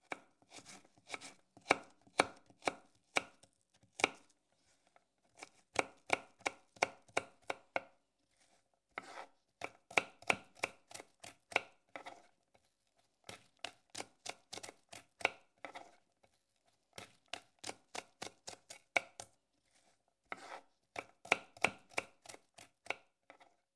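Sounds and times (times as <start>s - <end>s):
chopping salad: 0.0s - 4.3s, 5.3s - 8.0s, 8.9s - 12.3s, 13.2s - 16.0s, 17.0s - 19.3s, 20.3s - 23.4s.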